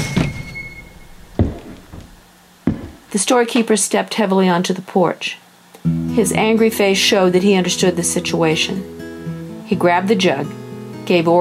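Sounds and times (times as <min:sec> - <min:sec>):
screen door spring squeaking: 0:00.0 - 0:01.2
spring-loaded store screen door banging against siding: 0:01.2 - 0:03.1
speech: 0:03.1 - 0:09.0, 0:09.7 - 0:11.4.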